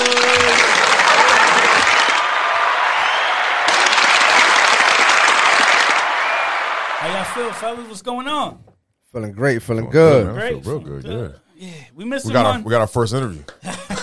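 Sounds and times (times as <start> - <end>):
cheers and whoops: 0.0 - 7.9
crowd applauding: 0.0 - 8.0
speech: 7.4 - 13.8
laughter: 13.6 - 14.0.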